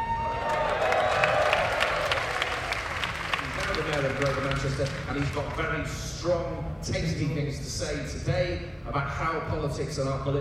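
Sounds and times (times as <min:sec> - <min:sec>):
large live audience clapping: 0:00.0 - 0:05.9
speech: 0:04.2 - 0:10.4.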